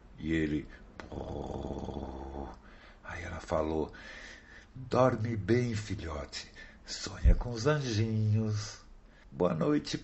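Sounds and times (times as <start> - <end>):
speech: 0.2 - 1.7, 3.2 - 10.0
voice imitating snoring: 1.0 - 2.6.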